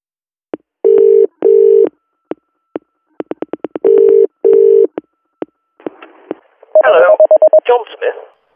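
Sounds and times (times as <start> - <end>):
telephone dialing tones as an office number is dialed: 0.9 - 1.9, 3.8 - 4.9, 6.8 - 7.6
speech: 7.7 - 8.4.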